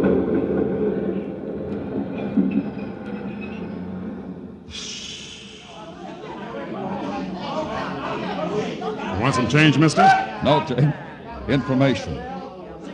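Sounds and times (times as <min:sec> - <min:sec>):
heavy subway train rumbling in a subway station: 0:00.0 - 0:06.0
sharp hiss of train brakes or air: 0:04.7 - 0:05.9
crowd murmuring in a subway station: 0:04.7 - 0:12.9
speech: 0:09.3 - 0:12.3.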